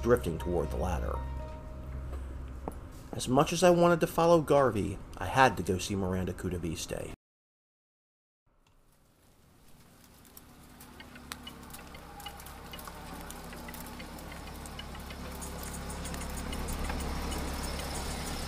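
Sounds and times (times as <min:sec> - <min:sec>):
speech: 0:00.0 - 0:01.4, 0:03.1 - 0:07.2
car engine rumbling low and steady while pulling into a parking lot: 0:00.0 - 0:03.2, 0:09.8 - 0:18.4
light patter of rain: 0:08.6 - 0:18.4.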